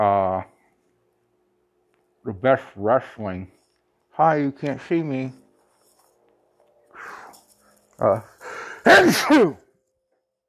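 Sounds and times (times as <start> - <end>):
speech: 2.4 - 3.6, 4.2 - 5.4, 8.0 - 9.6
breathy inhales before a sneeze: 7.0 - 7.4, 8.3 - 8.9
loud voiced theatrical covered sneeze: 8.8 - 9.6.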